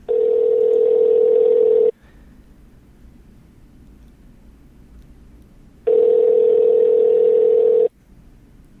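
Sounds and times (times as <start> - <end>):
telephone ringback tone on an outgoing call: 0.1 - 1.9, 5.9 - 7.9.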